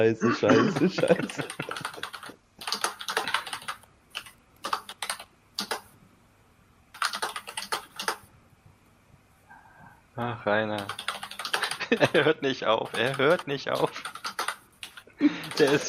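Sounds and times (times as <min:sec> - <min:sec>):
speech: 0:00.0 - 0:02.0, 0:10.2 - 0:11.0, 0:11.9 - 0:14.0, 0:15.2 - 0:15.8
laughter: 0:00.2 - 0:02.3, 0:11.6 - 0:12.6, 0:15.2 - 0:15.8
rapid typing on a computer keyboard: 0:01.2 - 0:05.9, 0:06.9 - 0:08.3, 0:10.8 - 0:12.2, 0:12.8 - 0:15.8.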